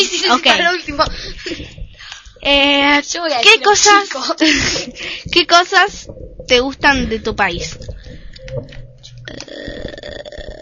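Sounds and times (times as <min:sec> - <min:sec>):
speech: 0:00.3 - 0:01.8, 0:02.4 - 0:07.8
long rumbling burp: 0:07.1 - 0:10.6.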